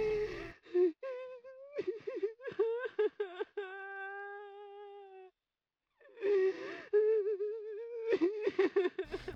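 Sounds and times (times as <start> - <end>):
sharp gasping breaths: 0.0 - 0.5, 9.1 - 9.3
person sobbing and crying loudly: 0.0 - 5.3, 6.1 - 9.3.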